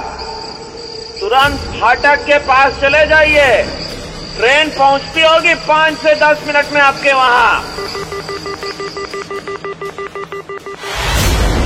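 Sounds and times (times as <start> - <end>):
speech: 1.3 - 3.8, 4.4 - 7.8
short electronic telephone line beeps: 7.4 - 10.9.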